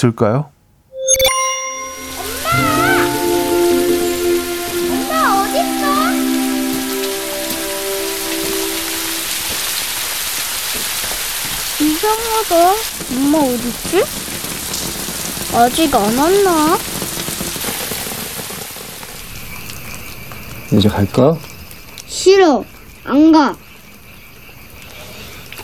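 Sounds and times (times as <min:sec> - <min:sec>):
speech: 0:00.0 - 0:00.5, 0:12.1 - 0:14.2, 0:15.6 - 0:16.9, 0:20.7 - 0:21.5, 0:22.1 - 0:23.6
bell-like chimes: 0:01.0 - 0:09.8
soft gliding musical tones: 0:01.0 - 0:10.0
steady rain pouring: 0:01.3 - 0:25.6.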